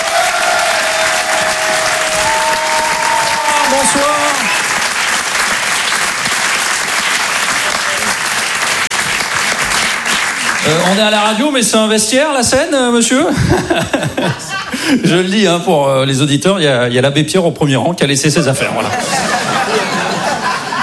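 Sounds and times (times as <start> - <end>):
audience applause at a live comedy club show: 0.0 - 11.4
speech: 10.7 - 19.5
laughter: 13.2 - 15.3, 18.6 - 20.8.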